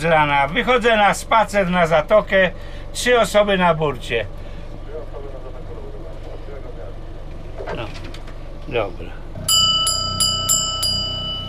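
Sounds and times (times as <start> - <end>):
speech: 0.0 - 4.5, 8.7 - 9.2
steady low hum: 0.0 - 11.4
dinner bell rung aboard a boat in a marina: 9.5 - 11.4.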